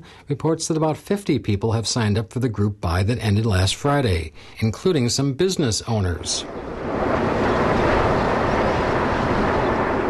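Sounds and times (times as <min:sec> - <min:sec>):
speech: 0:00.0 - 0:07.2
airplane flying low overhead with jet roar: 0:06.4 - 0:10.0.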